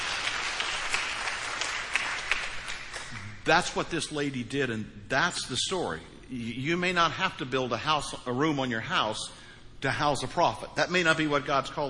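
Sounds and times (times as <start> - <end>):
crowd applauding: 0.0 - 3.4
speech: 3.4 - 11.8.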